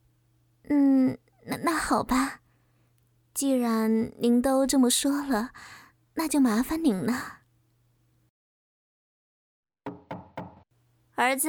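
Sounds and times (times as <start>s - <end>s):
speech: 0.6s - 2.4s, 3.4s - 7.4s, 11.2s - 11.4s
firm knocks on a home's front door: 9.9s - 10.7s.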